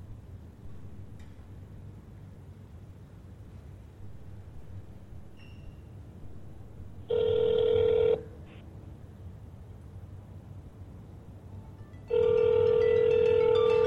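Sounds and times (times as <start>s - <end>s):
low constant rumble: 0.0s - 13.8s
telephone ringing with electronic tone: 7.1s - 8.3s, 12.1s - 13.8s.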